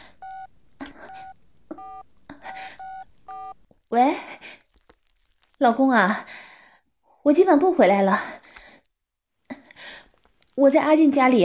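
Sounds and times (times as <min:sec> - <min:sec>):
mobile phone keypad tones: 0:00.2 - 0:03.6
speech: 0:05.6 - 0:06.4, 0:07.2 - 0:08.4, 0:10.6 - 0:11.4.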